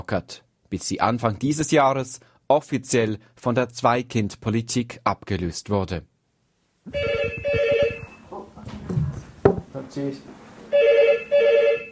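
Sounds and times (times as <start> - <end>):
speech: 0.0 - 6.1, 6.9 - 7.1, 9.9 - 10.4
telephone ringing with double-trill bursts: 6.9 - 8.3, 10.7 - 11.9.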